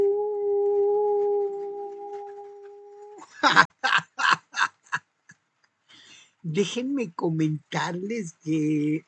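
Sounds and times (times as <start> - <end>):
person imitating a wolf howl: 0.0 - 3.3
speech: 3.4 - 3.7, 6.6 - 9.0.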